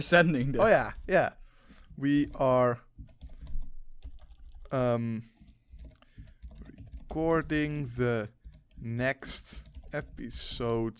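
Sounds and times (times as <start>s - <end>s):
speech: 0.0s - 1.4s, 2.0s - 2.8s, 4.7s - 5.3s, 7.1s - 10.9s
typing on a computer keyboard: 3.0s - 10.6s.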